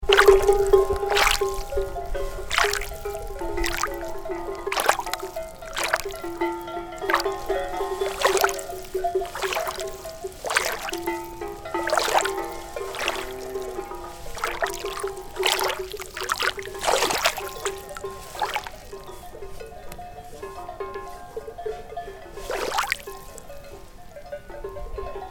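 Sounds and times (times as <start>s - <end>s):
water at Anayet: 0.0s - 25.2s.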